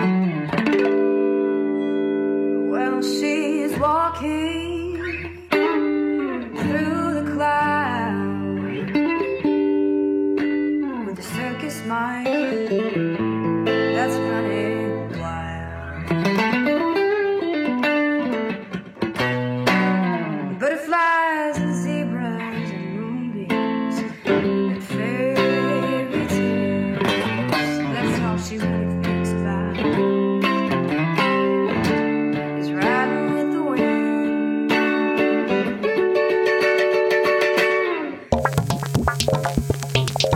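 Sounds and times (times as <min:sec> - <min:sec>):
solo clean electric guitar playing a slow melody with light reverb: 0:00.0 - 0:20.6, 0:21.3 - 0:40.3.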